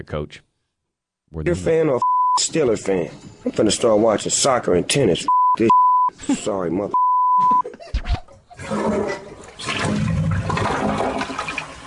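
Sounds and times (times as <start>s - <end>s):
speech: 0.0s - 0.5s, 1.3s - 7.0s
toilet flushing: 8.5s - 11.8s.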